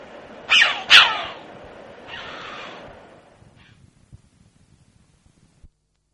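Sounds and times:
red-billed chough harsh grating call: 0.5 - 1.4, 2.1 - 2.9.

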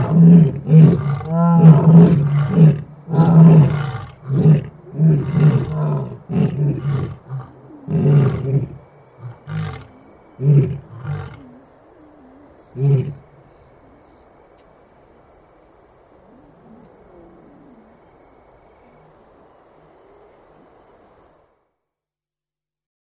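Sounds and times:
lion giving deep throaty roar-grunts: 0.0 - 11.6.

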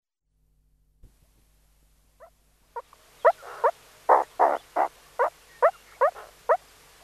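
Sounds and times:
faint low hum: 0.3 - 7.0
meerkat calls with rising chirps and bark-like notes: 2.2 - 6.6.

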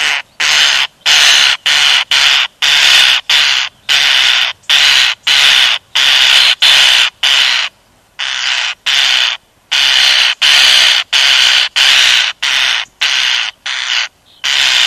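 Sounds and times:
European starling giving loud grating hissing rasps: 0.0 - 14.8.

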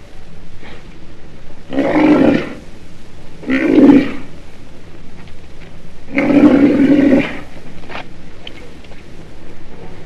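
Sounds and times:
black rhinoceros growling: 1.6 - 2.7, 3.4 - 4.4, 6.1 - 7.6.

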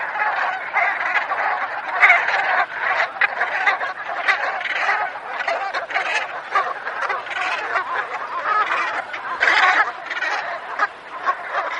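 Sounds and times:
Brant goose flock honking: 0.0 - 11.7.

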